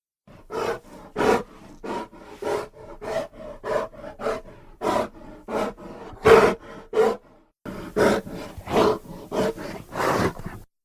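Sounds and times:
grizzly bear: 0:00.3 - 0:10.7.

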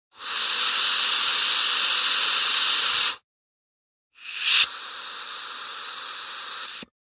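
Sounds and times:
air escaping through a valve: 0:00.1 - 0:03.2, 0:04.2 - 0:07.0.

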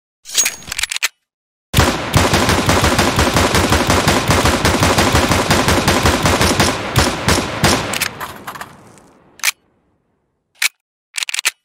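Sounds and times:
dual pistol gunshots: 0:01.8 - 0:09.4.

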